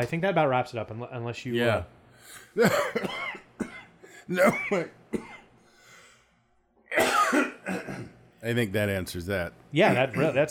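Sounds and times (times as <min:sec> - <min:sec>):
speech: 0:00.0 - 0:03.3, 0:04.3 - 0:05.3, 0:08.4 - 0:10.4
person coughing: 0:02.3 - 0:05.5, 0:06.9 - 0:08.2.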